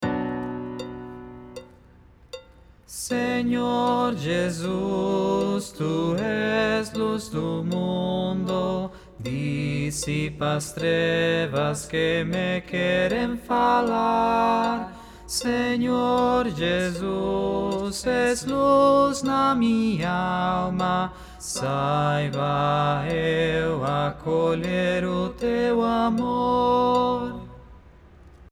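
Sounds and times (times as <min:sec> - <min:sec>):
soprano singing an octave higher: 0:02.9 - 0:27.7.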